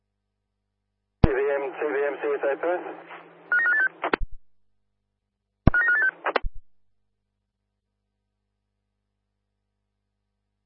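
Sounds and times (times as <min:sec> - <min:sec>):
speech: 0:01.8 - 0:03.3
telephone ringing in electronic warbling bursts: 0:03.5 - 0:03.9, 0:05.7 - 0:06.2
sharp clicks: 0:04.0 - 0:04.3, 0:05.7 - 0:06.6.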